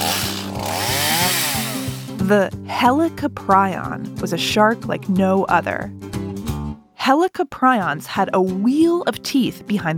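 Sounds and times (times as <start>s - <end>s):
chainsaw revving: 0.0s - 2.3s
speech: 2.3s - 6.1s, 7.1s - 9.9s.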